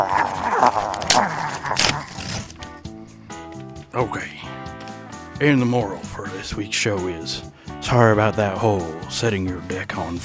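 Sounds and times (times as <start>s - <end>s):
growly dog-like snarling and chewing, possibly a person imitating a dog: 0.0s - 2.8s
paper envelope ripping open by teeth: 0.0s - 2.9s
speech: 5.4s - 10.2s.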